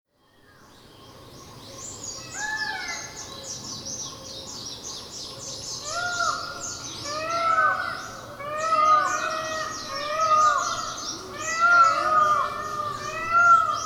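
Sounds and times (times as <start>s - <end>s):
Indian peafowl giving loud wailing calls on Miyakojima: 5.8s - 13.8s.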